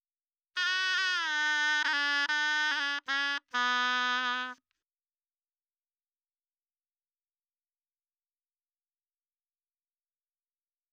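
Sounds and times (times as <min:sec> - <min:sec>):
dry shehnai melody: 0:00.6 - 0:04.6.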